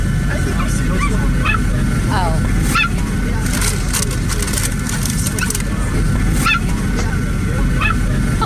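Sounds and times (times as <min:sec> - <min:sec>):
steady roar of an airplane cabin on a flight: 0:00.0 - 0:08.4
small dog yapping on an airplane: 0:02.7 - 0:03.0.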